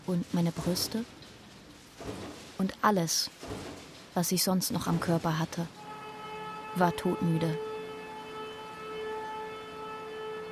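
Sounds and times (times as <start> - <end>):
speech: 0.1 - 1.3, 2.0 - 5.8, 6.8 - 7.7
steady siren wailing: 5.7 - 10.5.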